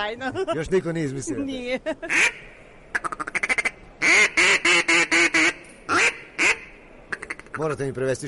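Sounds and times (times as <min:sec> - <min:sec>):
speech: 0:00.0 - 0:03.3, 0:07.6 - 0:08.2
duck call lure quacking to call a duck: 0:02.1 - 0:07.6.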